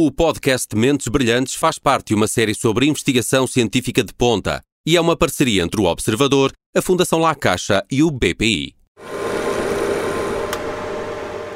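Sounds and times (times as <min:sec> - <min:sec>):
speech: 0:00.0 - 0:09.2
flow cytometer running with mechanical hum and whir in a laboratory: 0:09.0 - 0:11.5.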